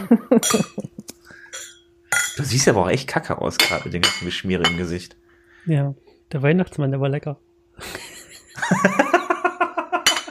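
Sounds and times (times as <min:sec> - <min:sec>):
laughter: 0:00.0 - 0:01.1, 0:07.8 - 0:10.1
speech: 0:00.1 - 0:00.9, 0:02.4 - 0:08.0, 0:08.6 - 0:09.2
sustained ringing tone from a glass: 0:00.4 - 0:00.9, 0:01.5 - 0:02.6, 0:03.6 - 0:04.9, 0:10.0 - 0:10.2
dishes and glasses clinking while being cleared away: 0:00.4 - 0:02.6, 0:03.6 - 0:05.0, 0:10.0 - 0:10.2.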